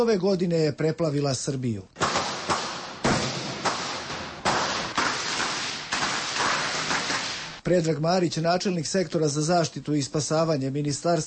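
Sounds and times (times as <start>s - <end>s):
speech: 0.0s - 2.0s, 7.6s - 11.2s
illegal firecrackers exploding in a street in Serbia: 2.0s - 7.6s.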